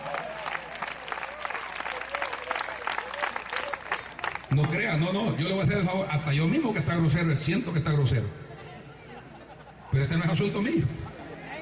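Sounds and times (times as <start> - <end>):
audience applauding: 0.0 - 4.8
faint voices and cheers from audience: 0.0 - 4.9
speech: 4.5 - 8.4, 10.0 - 11.0
laughter: 8.5 - 11.6.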